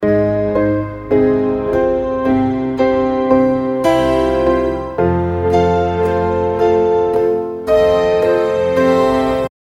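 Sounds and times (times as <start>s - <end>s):
light romantic music: 0.0s - 9.5s.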